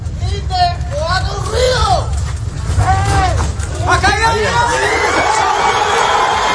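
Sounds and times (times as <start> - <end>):
steady rumble of noise: 0.0 - 6.5
excited crowd shouting at rubble rescue: 4.1 - 6.5.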